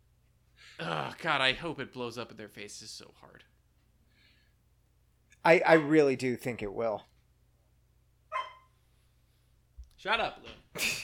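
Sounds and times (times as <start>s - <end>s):
speech: 0.8s - 3.6s, 5.4s - 7.1s, 10.0s - 11.0s
female dog barking sharply: 5.7s - 6.0s, 8.3s - 8.8s.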